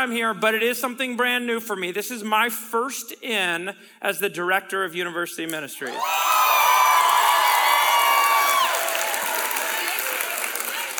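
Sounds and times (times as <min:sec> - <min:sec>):
speech: 0:00.0 - 0:06.3
audience at a university ministry gathering screaming and cheering: 0:05.9 - 0:10.9
people in the front row shrieking and whooping: 0:05.9 - 0:10.9
audience applause: 0:06.0 - 0:10.9.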